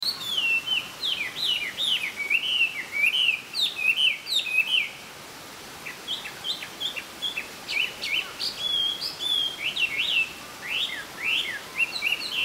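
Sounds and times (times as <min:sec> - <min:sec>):
Chinese hwamei singing with a loud beautiful voice: 0:00.0 - 0:05.0, 0:05.8 - 0:12.4.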